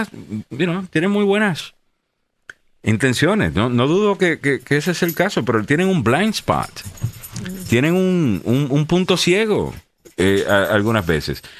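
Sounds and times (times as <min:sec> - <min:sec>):
speech: 0:00.0 - 0:01.8, 0:02.8 - 0:11.5
dog whimpering happily: 0:07.0 - 0:07.8.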